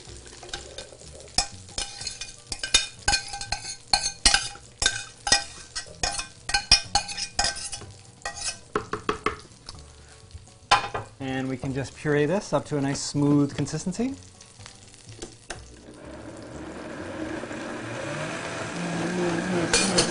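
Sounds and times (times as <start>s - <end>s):
steady sizzling: 0.0s - 20.0s
spoon scraping and clinking against a pan transferring corn ragu: 0.5s - 8.9s, 19.6s - 20.0s
speech: 11.3s - 14.4s.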